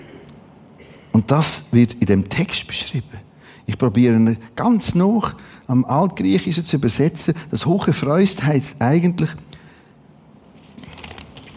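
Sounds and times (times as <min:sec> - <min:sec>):
speech: 0:01.2 - 0:09.6
paper rustling and crinkling: 0:10.5 - 0:11.5.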